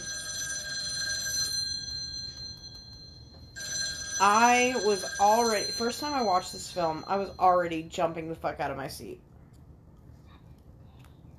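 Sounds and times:
old-style telephone bell ringing: 0:00.0 - 0:07.8
speech: 0:04.2 - 0:09.3.

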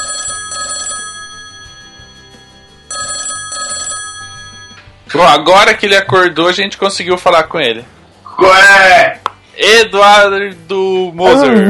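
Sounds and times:
telephone ringing while an internet call is placed: 0:00.0 - 0:05.0
speech: 0:05.1 - 0:11.6.

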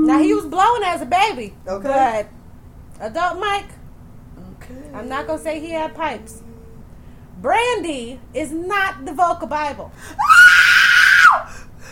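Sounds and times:
speech: 0:00.0 - 0:02.4, 0:03.0 - 0:03.8, 0:04.6 - 0:06.4, 0:07.4 - 0:10.6
person screaming high-pitched: 0:10.2 - 0:11.5.

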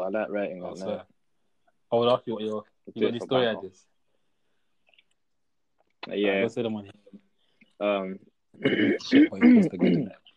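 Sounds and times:
speech: 0:00.0 - 0:01.2, 0:01.9 - 0:03.9, 0:06.0 - 0:07.2, 0:07.8 - 0:10.2
person clearing throat in gravelly voiced bursts: 0:08.6 - 0:10.3.

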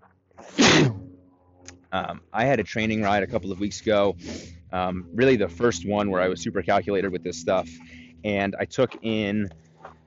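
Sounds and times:
sneeze: 0:00.4 - 0:01.0
speech: 0:01.9 - 0:09.6
quiet breathing: 0:07.6 - 0:08.3.

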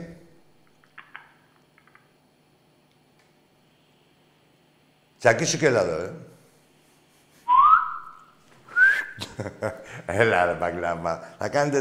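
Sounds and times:
speech: 0:05.2 - 0:06.3, 0:09.4 - 0:11.7
person whistling two rising notes: 0:07.5 - 0:09.2.

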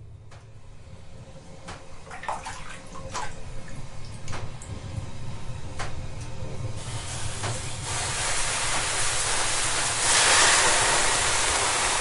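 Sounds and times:
low rumbling background in a Finnish sauna: 0:00.0 - 0:10.1
broad steam hiss in a Finnish sauna: 0:06.8 - 0:11.9.

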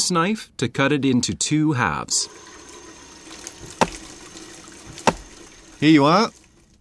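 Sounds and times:
speech: 0:00.1 - 0:02.5, 0:05.8 - 0:06.4
water running from a tap while washing raw chicken: 0:02.2 - 0:06.7
sharp splashes while washing raw chicken: 0:03.2 - 0:06.6.

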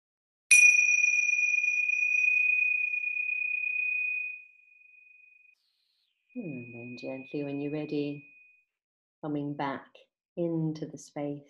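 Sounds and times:
meditation bell ringing: 0:00.5 - 0:05.6, 0:06.4 - 0:08.6
speech: 0:06.4 - 0:08.3, 0:09.2 - 0:11.4.

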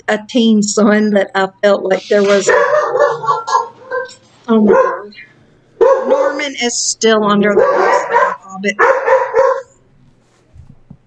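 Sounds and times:
speech: 0:00.1 - 0:03.6, 0:04.5 - 0:09.1
riled-up dog barking: 0:02.2 - 0:05.2, 0:05.8 - 0:06.5, 0:07.5 - 0:09.8
low grumbling dog woofs: 0:02.3 - 0:04.2.

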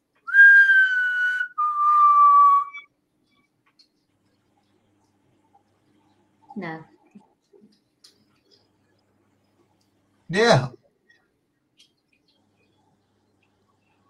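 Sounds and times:
person whistling a short tune: 0:00.3 - 0:02.9
speech: 0:06.6 - 0:06.9, 0:10.3 - 0:10.8.

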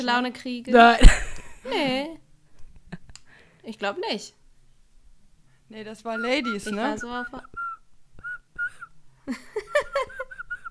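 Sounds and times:
speech: 0:00.0 - 0:02.2, 0:03.6 - 0:04.4, 0:05.7 - 0:07.6, 0:09.3 - 0:09.5
breathy whistled notes: 0:06.2 - 0:09.0
laughter: 0:09.3 - 0:10.7.

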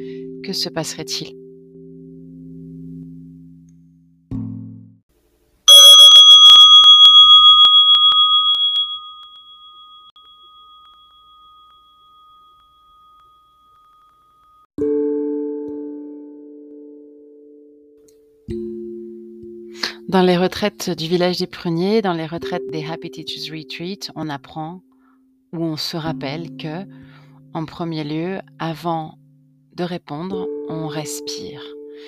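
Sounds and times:
speech: 0:00.5 - 0:01.4, 0:20.1 - 0:24.9, 0:25.5 - 0:29.2, 0:29.8 - 0:32.0
small meditation bell gong struck and ringing: 0:05.7 - 0:14.7.

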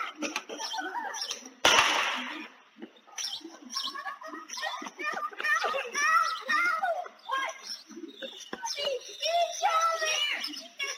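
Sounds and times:
laughter: 0:00.0 - 0:07.2
birds chirping: 0:00.0 - 0:10.9
children playing outdoors on a residential street: 0:00.0 - 0:10.9
gunshot fired through a house's front window: 0:01.6 - 0:02.4.

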